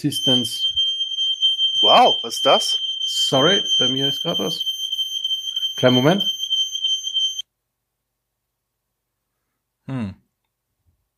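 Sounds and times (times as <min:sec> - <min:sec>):
speech: 0:00.0 - 0:00.8, 0:01.8 - 0:04.7, 0:05.8 - 0:06.4, 0:09.9 - 0:10.2
smoke detector alarm high-pitched tone: 0:00.0 - 0:07.4.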